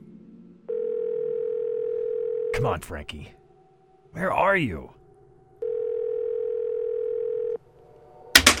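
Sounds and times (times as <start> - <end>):
telephone ringback tone: 0.7 - 2.6, 5.6 - 7.6
speech: 2.6 - 3.4, 4.1 - 5.0.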